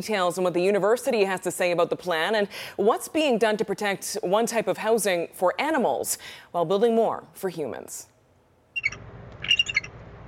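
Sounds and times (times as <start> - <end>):
speech: 0.0 - 8.1
bald eagles calling from nest in Douglas fir tree in coastal British Columbia: 8.8 - 10.0.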